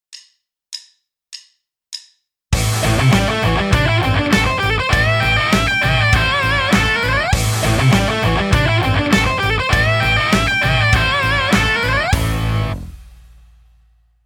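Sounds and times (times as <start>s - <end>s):
pentatonic rock lick on guitar: 2.6s - 13.2s.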